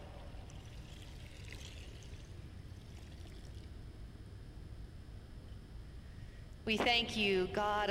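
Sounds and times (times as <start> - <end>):
water pouring and splashing in a rushing stream: 0.6 - 3.7
speech: 6.7 - 7.8.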